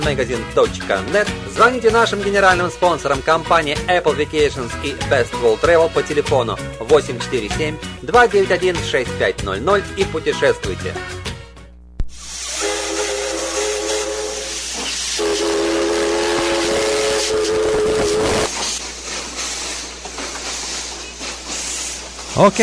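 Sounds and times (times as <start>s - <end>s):
historic steam train on the Quito to Guayaquil line in Ecuador letting out steam: 0.0s - 8.6s, 12.2s - 22.6s
speech: 0.0s - 11.2s, 22.4s - 22.6s
sustained steam train whistle tone: 12.2s - 18.5s.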